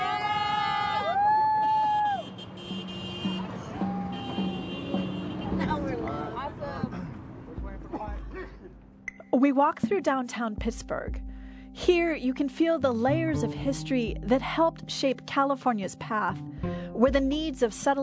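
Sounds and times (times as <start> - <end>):
people cheering and shouting: 0.0 - 2.4, 3.6 - 5.0
traffic noise: 0.0 - 9.0
support car horns honking: 1.6 - 8.6
speech: 9.4 - 18.0.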